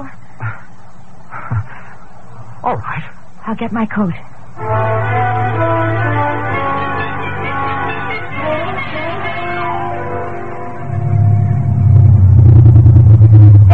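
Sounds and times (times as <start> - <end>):
speech: 2.6 - 5.0
car engine droning: 4.6 - 13.7.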